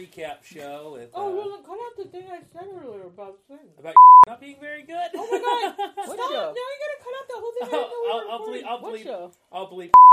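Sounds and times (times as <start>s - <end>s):
speech: 0.0s - 10.1s
censor bleep: 4.0s - 4.3s, 10.0s - 10.1s
laughter: 5.1s - 6.4s.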